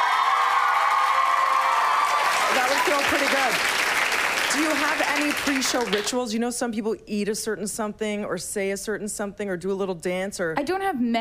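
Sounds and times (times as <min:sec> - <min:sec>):
large concert crowd screaming and cheering for a pop singer: 0:00.0 - 0:03.6
speech: 0:02.5 - 0:03.8, 0:04.5 - 0:11.1.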